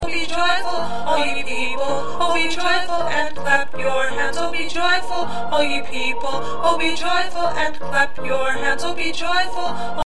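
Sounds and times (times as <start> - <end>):
second tenor singing: 0.0 - 10.0.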